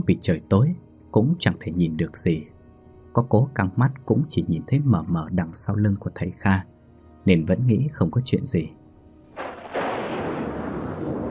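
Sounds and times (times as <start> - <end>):
speech: 0.0 - 2.6, 3.2 - 8.8
lightning strike crack on a dark night: 9.4 - 11.2
sustained broad roaring thunder rumble: 9.4 - 11.2.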